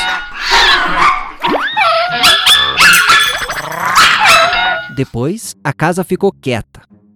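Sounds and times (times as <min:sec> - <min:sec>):
dog barking with yips and growls: 0:00.9 - 0:04.9
speech: 0:05.0 - 0:07.0.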